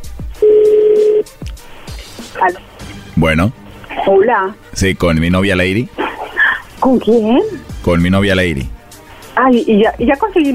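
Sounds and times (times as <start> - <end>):
telephone dialing tone as a call is placed: 0.4 - 1.3
speech: 2.4 - 6.0, 6.8 - 8.8, 9.4 - 10.5.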